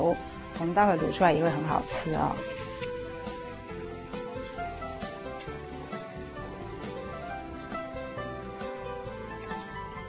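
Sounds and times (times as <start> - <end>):
speech: 0.0 - 2.6
food frying in hot oil: 0.0 - 10.0.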